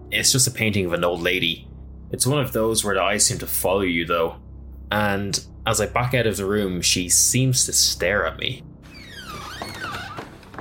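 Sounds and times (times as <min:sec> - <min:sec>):
speech: 0:00.1 - 0:09.8
door hinge creaking: 0:08.8 - 0:10.5.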